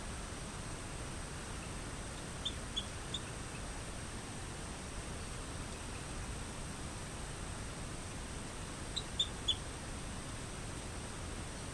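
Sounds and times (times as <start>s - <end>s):
steady hissing noise: 0.0s - 11.7s
Rio Grande chirping frog Eleutherodactylus cystignathoides chirping: 2.2s - 3.7s, 8.9s - 9.6s.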